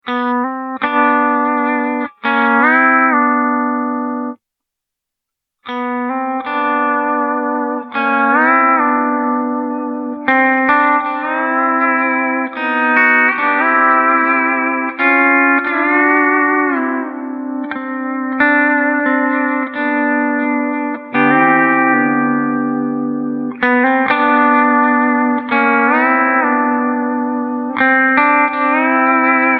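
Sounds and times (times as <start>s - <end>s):
modern pedal steel guitar with hall reverb: 0.1s - 4.4s, 5.7s - 29.5s.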